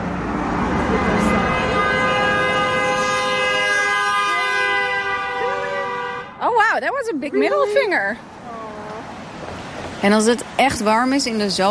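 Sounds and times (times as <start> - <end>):
low wash of street noise: 0.0 - 11.7
car horn blaring in one long steady tone: 0.7 - 6.7
speech: 6.8 - 8.4, 10.0 - 11.7.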